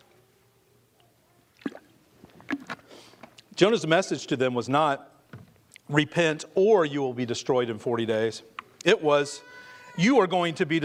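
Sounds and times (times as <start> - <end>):
person gulping and swallowing water: 1.6 - 2.8
speech: 3.6 - 5.1, 5.9 - 10.8.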